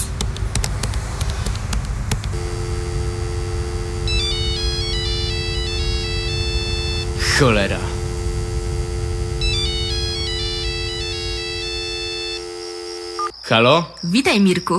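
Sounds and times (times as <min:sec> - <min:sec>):
quick taps: 0:00.0 - 0:02.4
steady electronic tone: 0:02.3 - 0:13.3
telephone ringtone melody of stepping beeps: 0:02.4 - 0:13.3
speech: 0:07.4 - 0:07.9, 0:13.5 - 0:14.7.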